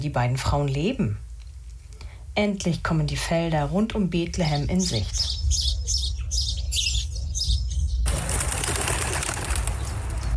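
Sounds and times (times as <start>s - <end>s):
speech: 0.0s - 1.2s, 2.4s - 6.0s
low outdoor rumble: 0.0s - 10.3s
chorus of many birds chirping and tweeting: 4.0s - 10.3s.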